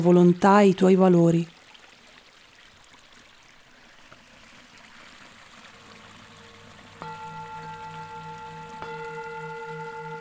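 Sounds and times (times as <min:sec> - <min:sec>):
speech: 0:00.0 - 0:01.6
water flowing steadily in a stream: 0:00.0 - 0:10.1
sustained droning tone: 0:05.6 - 0:10.1.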